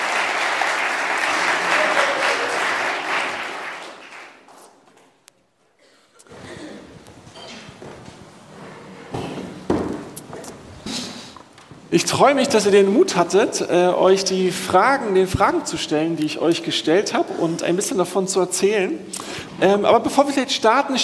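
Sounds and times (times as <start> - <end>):
crowd applauding to welcome guests onto a stage: 0.0 - 4.8
shuffling footsteps: 6.3 - 12.0
knocks and bumps: 9.1 - 10.2
speech: 12.0 - 21.0.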